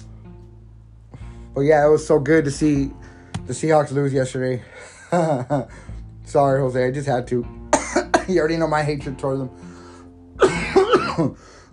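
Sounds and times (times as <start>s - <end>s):
speech: 1.6s - 9.7s, 11.2s - 11.6s
harsh throaty coughs: 7.7s - 8.3s, 10.4s - 11.4s.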